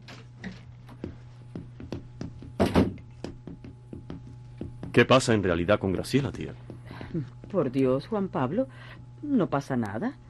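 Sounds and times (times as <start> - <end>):
low steady hum: 0.0 - 10.2
footsteps of a person walking to the door: 0.1 - 8.2
speech: 5.0 - 10.2.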